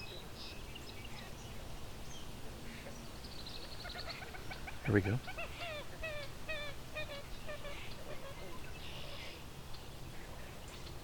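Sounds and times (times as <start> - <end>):
outdoor noise: 0.0 - 11.0
rustle: 0.0 - 11.0
common gallinule giving nasal clucking calls: 3.6 - 9.4
speech: 4.9 - 5.4.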